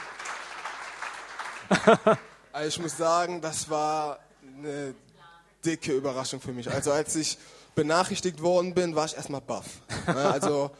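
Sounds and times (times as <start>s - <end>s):
small group clapping: 0.0s - 3.8s
laughter: 1.6s - 2.3s, 9.9s - 10.7s
speech: 1.7s - 10.7s.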